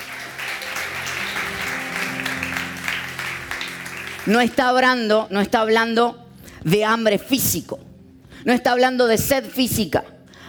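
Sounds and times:
audience applauding: 0:00.0 - 0:04.8
sustained musical tones: 0:00.0 - 0:05.4
speech: 0:04.2 - 0:10.4.

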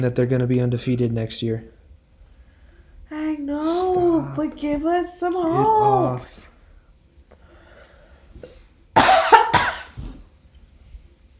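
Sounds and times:
speech: 0:00.0 - 0:01.8, 0:03.4 - 0:06.5
person coughing harshly into the microphone: 0:09.0 - 0:10.2.

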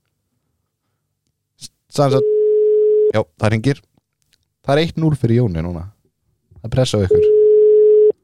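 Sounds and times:
speech: 0:02.0 - 0:02.4, 0:03.1 - 0:03.9, 0:04.6 - 0:06.0, 0:06.6 - 0:07.3
telephone ringing tone while dialling a number: 0:02.2 - 0:03.1, 0:07.1 - 0:08.2.

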